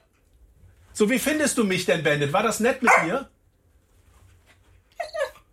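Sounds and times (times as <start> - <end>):
speech: 1.0 - 3.3
TV dog whimpering in high rising whines: 4.9 - 5.5.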